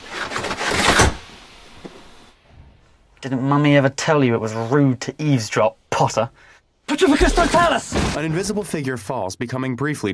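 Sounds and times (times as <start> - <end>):
train compartment window blinds dropping: 0.0 - 1.5
speech: 3.2 - 10.1.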